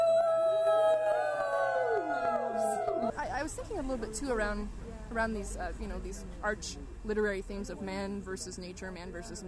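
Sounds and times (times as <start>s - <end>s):
wolves howling: 0.2s - 3.2s
speech: 3.6s - 9.4s.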